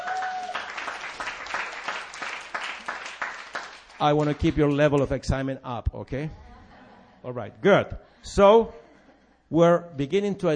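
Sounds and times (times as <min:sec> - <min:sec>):
cheers and whistles: 0:00.0 - 0:00.9
large group clapping as a clap offering: 0:00.0 - 0:05.2
speech: 0:04.0 - 0:06.4, 0:07.2 - 0:08.8, 0:09.5 - 0:10.5
laughter: 0:06.2 - 0:09.5.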